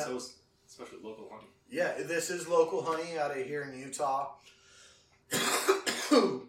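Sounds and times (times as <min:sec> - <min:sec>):
speech: 0:00.0 - 0:04.6, 0:05.3 - 0:06.4
harsh raspy coughs: 0:05.3 - 0:06.4.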